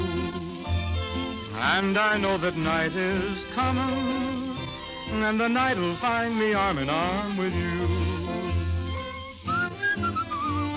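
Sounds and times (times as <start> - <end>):
warm instrumental accompaniment: 0.0 - 10.7
speech: 1.6 - 8.2
person whistling a melody: 9.5 - 10.7.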